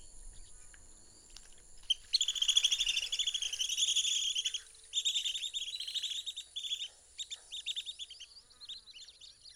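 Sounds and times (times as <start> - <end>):
Long-billed Dowitcher Limnodromus scolopaceus calling: 1.8 - 8.8.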